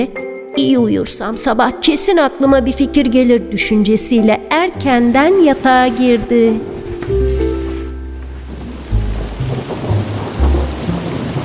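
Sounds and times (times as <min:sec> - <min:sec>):
speech: 0:00.0 - 0:06.8
deep rumbling thunder: 0:04.8 - 0:11.4
rainwater gurgling in the streets: 0:04.8 - 0:11.4
heavy rain pattering on rooftops at night: 0:04.9 - 0:11.4.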